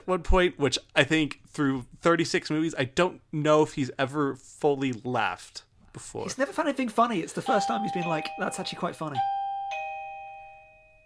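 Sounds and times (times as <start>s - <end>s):
speech: 0.0s - 9.4s
electronic doorbell chime: 7.4s - 11.0s.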